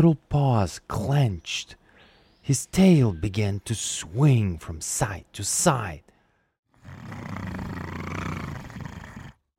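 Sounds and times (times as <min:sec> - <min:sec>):
speech: 0:00.0 - 0:01.8, 0:02.4 - 0:06.1, 0:07.0 - 0:07.6
young tiger cub growling: 0:06.8 - 0:09.5.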